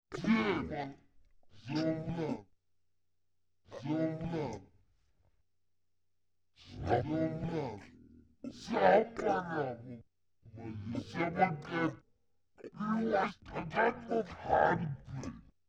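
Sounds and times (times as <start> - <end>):
evil underling humanoid vocals: 0.1 - 1.0, 1.6 - 2.5, 3.7 - 4.6, 6.7 - 10.0, 10.6 - 12.0, 12.6 - 15.5.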